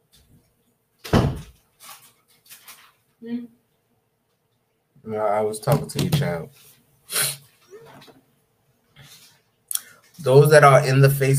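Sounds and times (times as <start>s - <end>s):
door swinging shut with a solid thud: 1.0s - 1.6s
speech: 3.2s - 3.6s, 5.0s - 7.3s, 10.2s - 11.3s.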